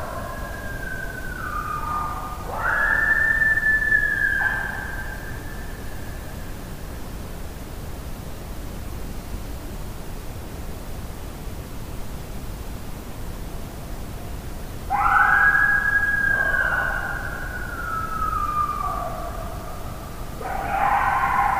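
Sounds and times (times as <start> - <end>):
coyote howling: 0.0 - 6.2, 14.9 - 21.5
steady hiss: 0.0 - 21.5.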